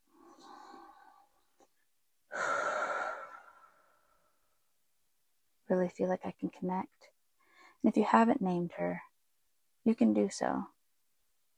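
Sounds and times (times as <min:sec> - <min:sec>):
big deep breath with airy inhale and breathy exhale: 0:00.1 - 0:01.4, 0:02.3 - 0:04.4
speech: 0:05.7 - 0:07.1, 0:07.8 - 0:09.1, 0:09.8 - 0:10.7.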